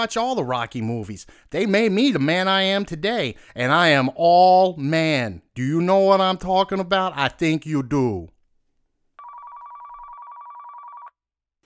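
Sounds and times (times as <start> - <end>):
speech: 0.0 - 8.3
telephone ringing: 9.2 - 11.2.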